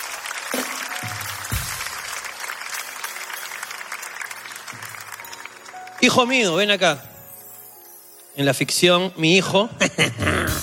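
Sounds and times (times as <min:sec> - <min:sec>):
live audience clapping: 0:00.0 - 0:07.4
speech: 0:06.0 - 0:07.1, 0:08.4 - 0:10.6.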